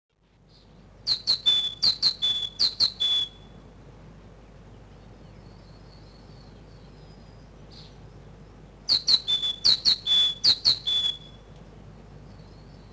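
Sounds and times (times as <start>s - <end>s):
great tit singing in spring: 0.4s - 12.9s.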